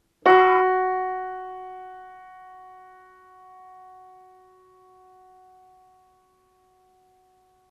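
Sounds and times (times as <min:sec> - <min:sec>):
piano note F sharp: 0:00.2 - 0:07.6.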